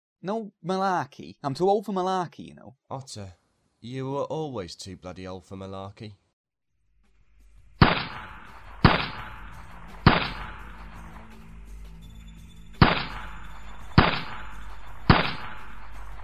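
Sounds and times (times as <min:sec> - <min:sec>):
speech: 0:00.2 - 0:06.2
gunshots fired at a shooting range: 0:07.8 - 0:11.2, 0:12.8 - 0:16.2.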